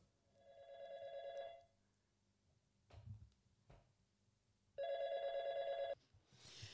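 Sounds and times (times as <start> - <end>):
telephone ringback tone with long buzzing tones: 0.5 - 1.6, 4.8 - 6.0.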